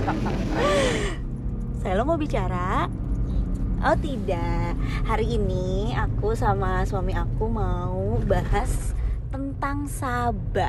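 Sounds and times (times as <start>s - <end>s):
laughter: 0.0s - 1.2s
low car engine rumble inside car: 0.0s - 10.6s
speech: 0.1s - 1.1s, 1.8s - 3.0s, 3.8s - 9.0s, 9.6s - 10.6s
brief breathy vocal sound: 0.4s - 1.2s.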